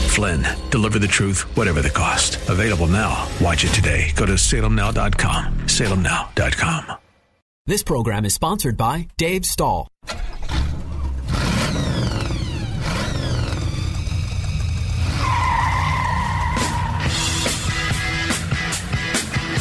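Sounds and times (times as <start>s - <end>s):
speech: 0.2s - 7.0s, 7.7s - 10.2s
tires squealing and skidding: 10.2s - 17.7s
race car engines revving through gear shifts: 10.2s - 18.9s.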